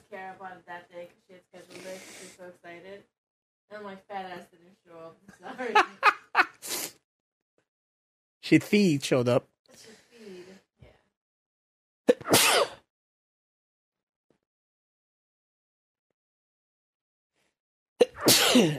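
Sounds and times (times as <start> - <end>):
speech: 0.1 - 2.6, 3.7 - 5.9, 8.5 - 9.9, 18.6 - 18.7
laughter: 5.3 - 6.6
sneezing: 12.1 - 12.9, 18.0 - 18.7.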